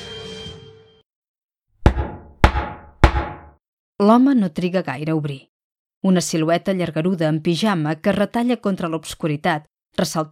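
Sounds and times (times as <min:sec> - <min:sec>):
knuckles knocking on the wooden door of a small house at night: 0:01.8 - 0:03.5
speech: 0:04.0 - 0:10.3.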